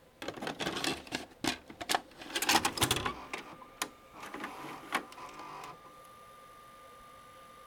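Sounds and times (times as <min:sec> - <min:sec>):
VCR cassette being inserted: 0:00.2 - 0:06.2.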